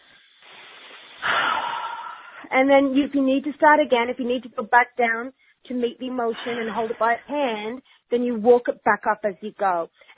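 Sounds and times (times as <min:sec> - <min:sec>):
single deep breath drawn in sharply: 0:00.0 - 0:02.5, 0:07.8 - 0:08.1
speech: 0:02.5 - 0:10.1.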